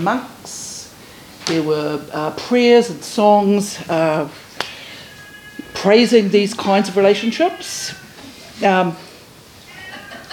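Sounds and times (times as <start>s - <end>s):
speech: 0.0s - 0.7s, 1.5s - 4.5s, 5.8s - 8.0s, 8.6s - 9.1s
faint steady hiss: 0.0s - 10.3s
cat meowing: 5.0s - 8.5s, 9.7s - 10.3s.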